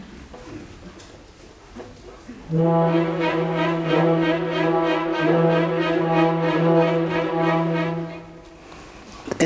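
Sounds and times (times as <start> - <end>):
speech: 2.5 - 6.9
orchestral brass horns holding a long low note: 2.5 - 8.6
second violins playing: 2.5 - 8.6.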